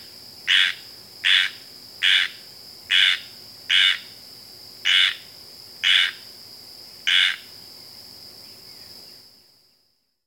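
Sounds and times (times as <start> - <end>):
squirrel treefrog rasping call: 0.0 - 4.2, 4.8 - 6.3, 7.0 - 7.5.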